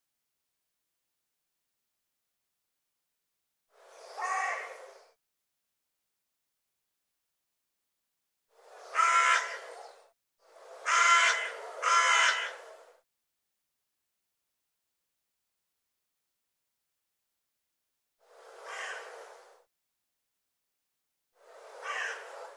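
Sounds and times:
bird giving harsh rasping caws: 4.2 - 4.8, 8.9 - 9.7, 10.8 - 12.6, 18.6 - 19.2, 21.8 - 22.3.

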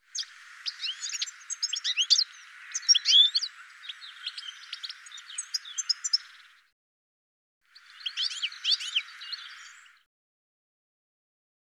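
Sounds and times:
bird calls: 0.0 - 6.7, 7.7 - 10.0.

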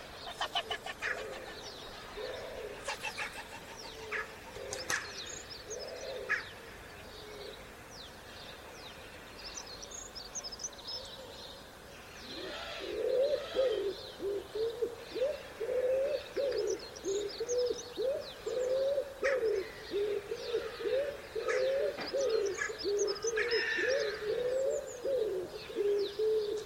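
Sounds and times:
wood pigeon cooing with soft low hollow coos: 0.0 - 6.4, 12.3 - 26.6
other birds chirping and twittering: 0.0 - 26.6.

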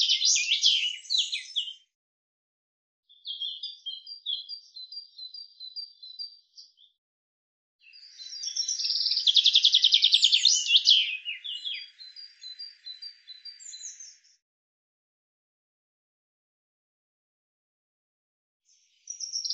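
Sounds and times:
common chaffinch song with rapid descending trill: 0.0 - 1.9, 3.1 - 7.0, 7.8 - 14.4.

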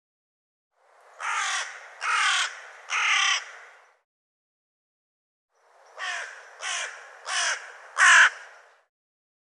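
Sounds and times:
bird cawing: 1.2 - 4.0, 5.8 - 8.8.

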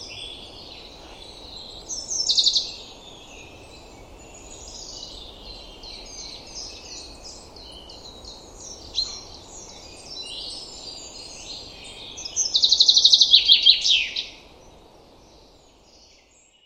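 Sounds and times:
Common chaffinch trilled song phrases: 0.0 - 16.6.

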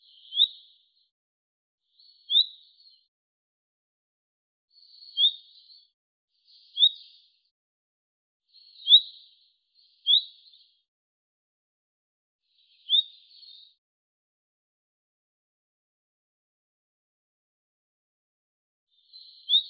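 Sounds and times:
bird giving short high upward-sweeping chirps: 0.0 - 1.1, 1.9 - 3.1, 4.7 - 7.5, 8.5 - 10.8, 12.5 - 13.8, 18.9 - 19.6.

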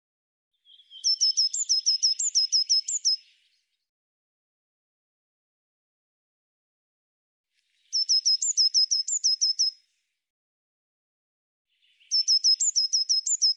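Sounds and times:
Eurasian blue tit giving sharp high repeated notes: 0.6 - 3.5, 7.9 - 9.8, 11.9 - 13.5.

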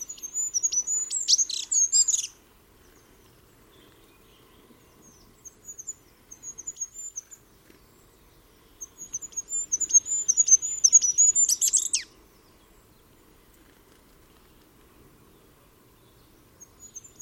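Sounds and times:
bird chirping: 0.0 - 13.3, 15.3 - 17.2.

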